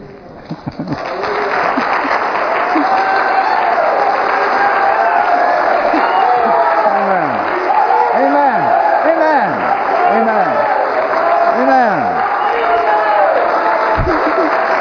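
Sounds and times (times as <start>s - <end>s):
large crowd sustained applause: 0.0s - 14.7s
laughter: 0.3s - 3.8s, 4.4s - 7.5s, 13.5s - 14.7s
scattered cheers and shouting voices: 1.0s - 14.7s.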